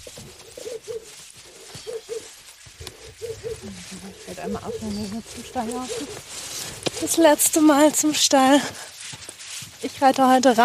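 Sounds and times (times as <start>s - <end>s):
pigeon cooing on Mallorca: 0.0s - 6.3s
speech: 4.3s - 6.4s, 7.0s - 8.9s, 9.8s - 10.6s.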